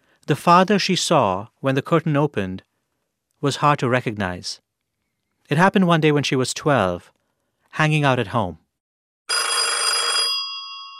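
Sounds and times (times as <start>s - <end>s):
speech: 0.3s - 2.7s, 3.4s - 4.6s, 5.5s - 8.6s
home telephone bell ringing: 9.3s - 10.9s.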